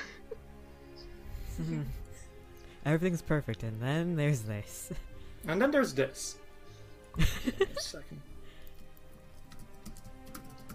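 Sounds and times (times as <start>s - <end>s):
speech: 1.6s - 2.0s, 2.8s - 6.4s, 7.2s - 8.3s
laughter: 7.2s - 8.2s
typing on a keyboard: 9.4s - 10.7s.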